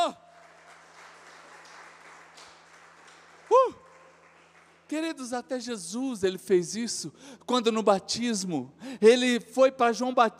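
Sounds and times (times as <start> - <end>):
audience applauding loudly: 0.0 - 5.2
speech: 4.9 - 10.3.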